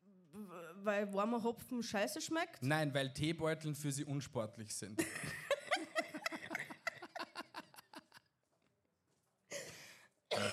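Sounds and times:
speech: 0.5s - 5.5s
rhythmic laughter: 5.0s - 8.2s
harsh coughs: 9.6s - 10.5s.

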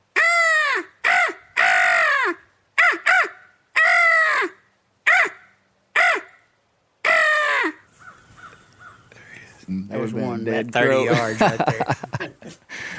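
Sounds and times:
person imitating crow calls with their voice to call crows: 0.1s - 6.4s, 7.0s - 9.0s
faint scattered crow calls: 0.2s - 9.4s
speech: 9.7s - 12.1s
laughter: 10.8s - 12.9s.

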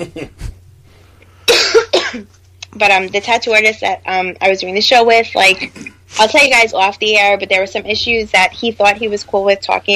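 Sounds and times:
person coughing: 1.5s - 2.3s
speech: 2.1s - 9.9s.

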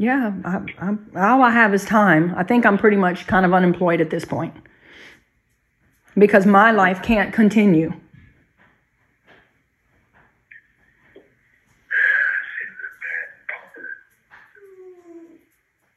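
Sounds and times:
speech: 0.0s - 4.7s, 6.2s - 8.0s
dogs whimpering and whining in the room: 14.4s - 15.6s.

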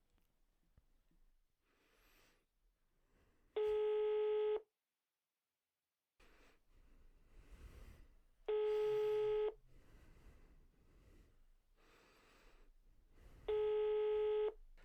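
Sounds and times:
outgoing phone call ringing tone: 3.8s - 4.6s, 8.5s - 9.6s, 13.5s - 14.6s.

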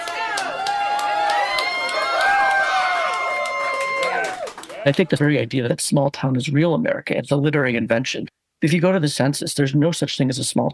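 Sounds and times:
crowd cheering at a cinnamon roll eating contest: 0.0s - 5.3s
speech: 4.8s - 10.7s.

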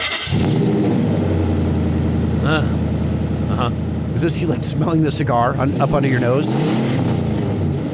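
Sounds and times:
V8 engine starting: 0.0s - 0.7s
V8 engine deep rumbling idle: 0.0s - 7.9s
speech: 4.2s - 7.1s.

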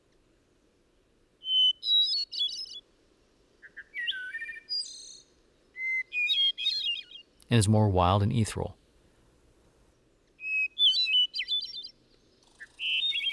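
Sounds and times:
soft hiss: 0.0s - 13.3s
hermit thrush singing: 1.4s - 2.8s, 3.6s - 8.8s, 9.8s - 13.3s
speech: 7.5s - 8.8s.

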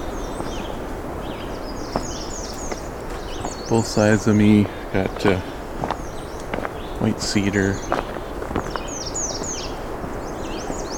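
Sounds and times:
black-and-white warbler singing: 0.0s - 10.9s
faint outdoor rustle: 0.0s - 10.9s
other birds calling softly: 0.0s - 10.9s
speech: 3.7s - 5.5s, 7.0s - 8.0s.

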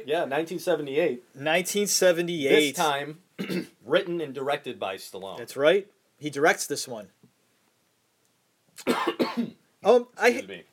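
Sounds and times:
speech: 0.0s - 7.2s, 8.8s - 10.7s
person coughing: 3.4s - 3.8s, 8.8s - 9.6s.

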